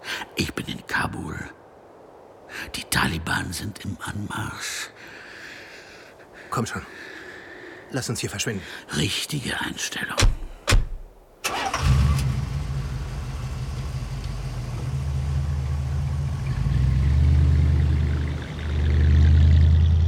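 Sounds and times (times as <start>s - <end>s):
speech: 0.4s - 1.6s, 2.6s - 5.1s, 6.5s - 7.1s, 7.9s - 10.4s
car engine cranking, starting and idling: 11.4s - 20.0s.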